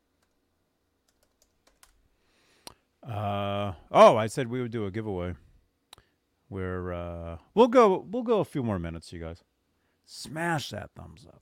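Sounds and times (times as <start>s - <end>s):
search typed on a computer keyboard: 1.1s - 2.0s
speech: 3.1s - 5.4s, 6.5s - 9.5s, 10.1s - 11.4s.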